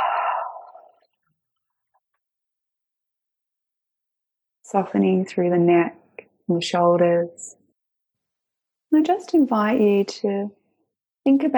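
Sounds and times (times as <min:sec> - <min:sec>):
slow exhale during a guided breathing exercise: 0:00.0 - 0:01.0
speech: 0:04.7 - 0:07.6, 0:08.9 - 0:10.6, 0:11.2 - 0:11.5.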